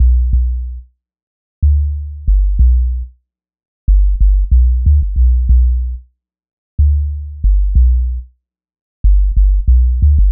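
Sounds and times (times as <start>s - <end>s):
low hip hop dub bass at 93 BPM in A: 0.0s - 0.8s, 1.7s - 3.1s, 3.9s - 6.0s, 6.8s - 8.2s, 9.1s - 10.3s.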